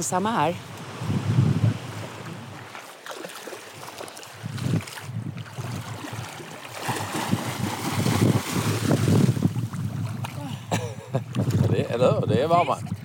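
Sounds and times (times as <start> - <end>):
speech: 0.0 - 1.1, 12.0 - 12.9
wind gusting across the microphone outdoors: 0.0 - 2.7, 3.6 - 13.0
water sloshing: 1.8 - 11.9.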